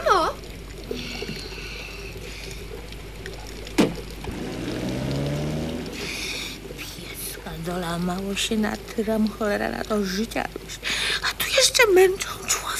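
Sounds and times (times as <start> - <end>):
taxi engine hum: 0.0 - 8.9
taxi tires hissing through water on a wet street: 0.6 - 7.4
speech: 7.7 - 12.6.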